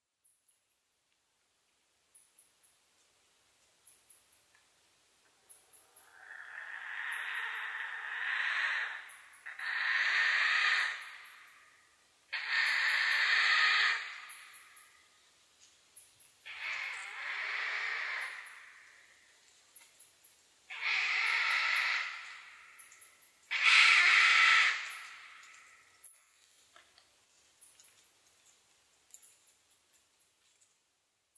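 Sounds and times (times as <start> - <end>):
owl calling: 6.0 - 15.0, 16.4 - 19.2, 20.7 - 25.9.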